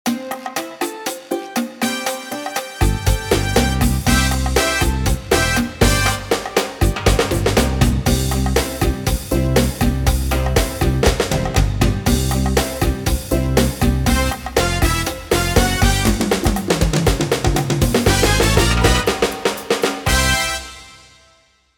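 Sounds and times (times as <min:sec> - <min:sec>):
Latin pop music: 0:00.0 - 0:21.5.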